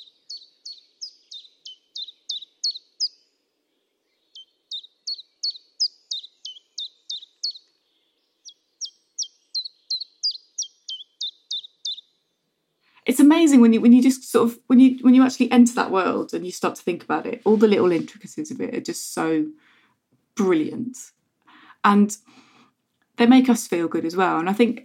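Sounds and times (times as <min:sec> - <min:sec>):
bird singing high chirps: 0:00.0 - 0:13.0
speech: 0:13.1 - 0:19.7, 0:20.4 - 0:21.2, 0:21.8 - 0:22.4, 0:23.2 - 0:24.8.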